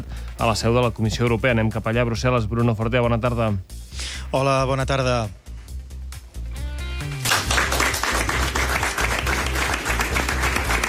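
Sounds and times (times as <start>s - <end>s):
speech: 0.4s - 5.4s
crowd applauding at an agreement signing ceremony in Brussels: 7.0s - 10.8s.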